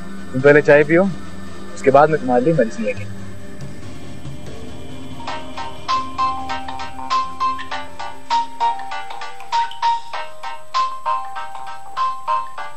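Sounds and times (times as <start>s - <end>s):
speech: 0.3s - 1.2s, 1.8s - 3.2s
phone ringtone for an incoming call, bright electronic melody: 4.1s - 12.7s.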